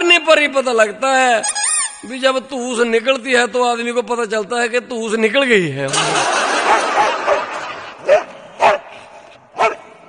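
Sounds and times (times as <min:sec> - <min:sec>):
speech: 0:00.2 - 0:07.3
laughter: 0:05.9 - 0:08.2
dog barking: 0:06.6 - 0:08.9, 0:09.6 - 0:09.9.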